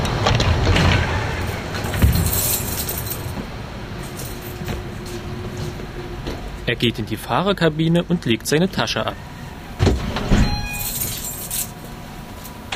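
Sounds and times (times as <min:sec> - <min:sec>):
tram door opening with a metallic clunk and rattling: 0:00.0 - 0:06.7, 0:09.8 - 0:11.4
steady rumbling noise in a large hall: 0:00.0 - 0:12.7
speech: 0:06.7 - 0:09.3.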